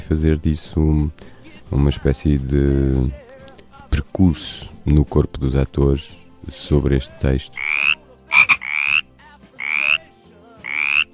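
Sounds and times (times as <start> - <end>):
speech: 0.1 - 3.2, 4.0 - 7.7
frog croaking: 7.6 - 11.1.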